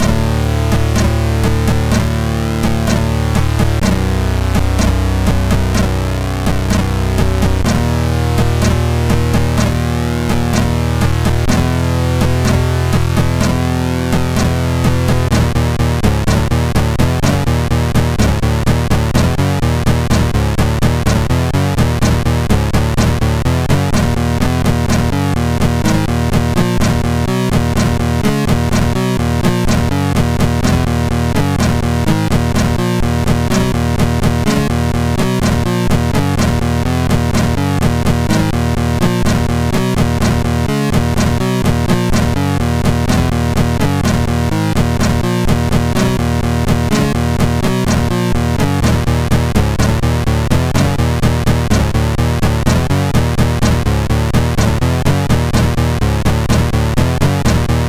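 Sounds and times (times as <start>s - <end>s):
SID chiptune music on MOS6581R2 chip: 0.0s - 57.8s.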